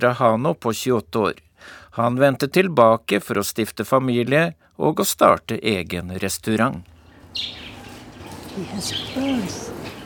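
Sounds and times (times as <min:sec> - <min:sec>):
speech: 0:00.0 - 0:07.7, 0:08.6 - 0:09.8
canaries warbling lower notes: 0:07.0 - 0:10.0
two green canaries chirping in a small cage: 0:07.0 - 0:10.0.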